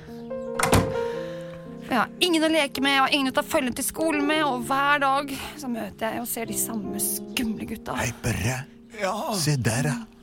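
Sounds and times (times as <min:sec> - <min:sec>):
door being shut: 0:00.6 - 0:01.1
speech: 0:01.9 - 0:10.1.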